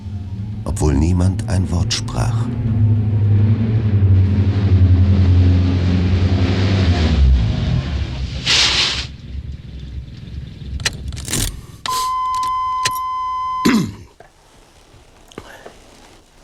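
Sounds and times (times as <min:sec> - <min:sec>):
car engine droning on a drive from Los Angeles to Pasadena: 0:00.0 - 0:16.4
speech: 0:00.8 - 0:03.0
short hiss: 0:08.4 - 0:09.2
sharp clicks: 0:10.8 - 0:13.1
sustained electronic warning tone: 0:11.9 - 0:13.7.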